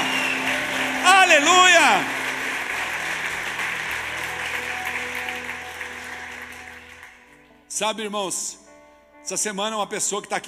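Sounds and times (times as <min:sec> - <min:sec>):
large crowd applauding: 0:00.0 - 0:07.4
speech: 0:01.3 - 0:02.2, 0:07.8 - 0:08.6, 0:09.2 - 0:10.4.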